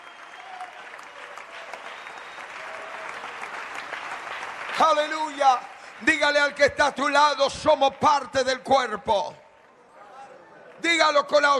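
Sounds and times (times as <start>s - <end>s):
audience applauding: 0.0s - 8.9s
speech: 4.8s - 9.4s, 10.8s - 11.5s.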